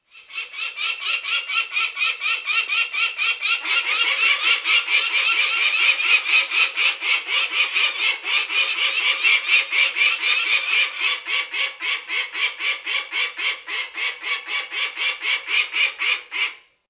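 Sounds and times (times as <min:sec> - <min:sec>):
peregrine falcon: 0:00.0 - 0:16.7.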